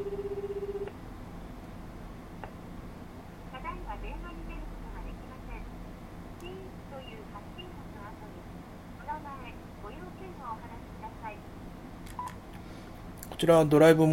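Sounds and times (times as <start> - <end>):
telephone ringback tone while calling a phone: 0.0 - 0.9
hissy noise: 0.9 - 14.1
speech: 13.4 - 14.1.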